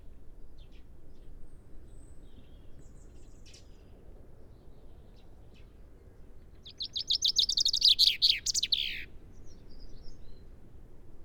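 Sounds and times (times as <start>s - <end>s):
common chaffinch Fringilla coelebs song: 6.6s - 9.1s.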